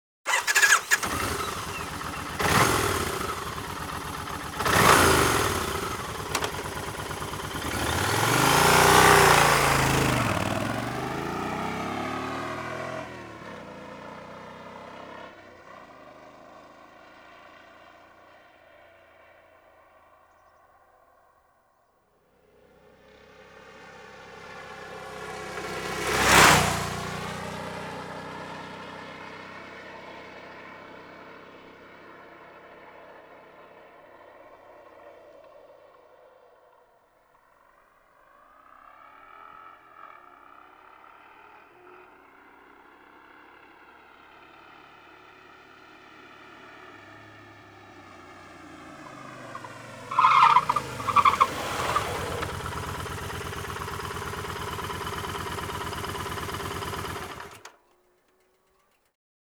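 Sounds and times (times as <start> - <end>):
Kawasaki VN 1500 Classic Tourer motorcycle: 0.3 - 18.4, 22.6 - 30.6, 38.8 - 59.1.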